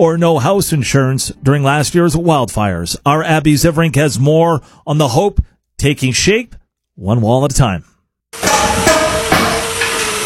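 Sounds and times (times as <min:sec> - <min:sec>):
speech: 0:00.0 - 0:07.9
hammers striking at outdoor building site in northern Saskatchewan after a wildfire: 0:08.4 - 0:10.2.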